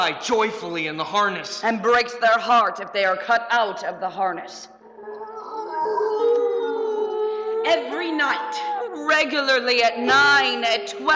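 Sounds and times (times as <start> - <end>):
speech: 0.0 - 5.2, 7.7 - 11.1
dogs howling: 4.8 - 9.0.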